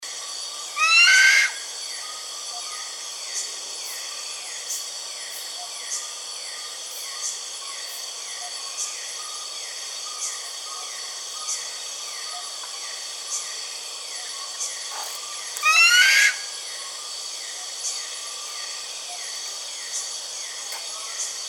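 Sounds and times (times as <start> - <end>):
buffy fish owl calling: 0.6 - 1.7, 15.5 - 16.6.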